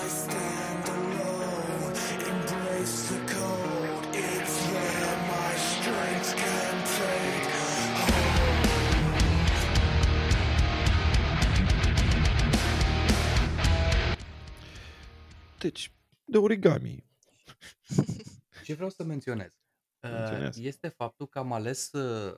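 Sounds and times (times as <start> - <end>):
loud metalcore band music with distorted low end and pounding drums: 0.0 - 15.6
speech: 15.7 - 17.0, 18.7 - 22.3
laughter: 17.5 - 18.4.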